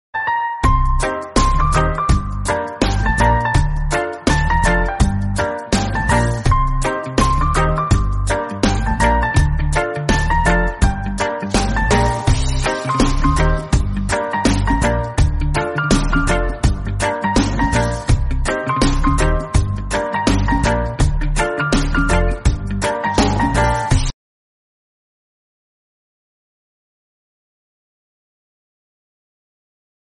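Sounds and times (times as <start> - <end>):
reggae background music: 0.2 - 24.1.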